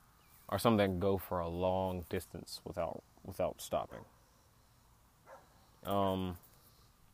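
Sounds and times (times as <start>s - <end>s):
speech: 0.5s - 4.2s, 5.8s - 6.5s
dog barking: 3.9s - 4.1s, 5.3s - 5.5s
dog yelping: 5.3s - 5.5s.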